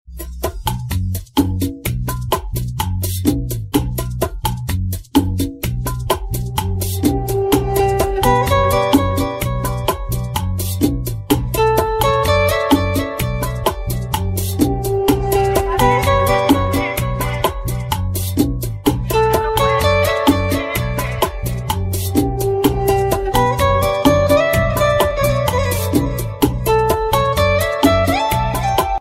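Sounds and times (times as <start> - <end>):
latino music on guitar: 0.1 - 29.0.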